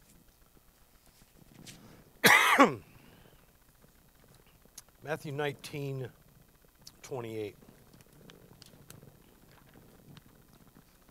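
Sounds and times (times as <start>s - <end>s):
harsh cough from a tickle in the throat: 2.2s - 2.9s
speech: 2.6s - 2.9s, 5.1s - 6.2s, 7.1s - 7.7s.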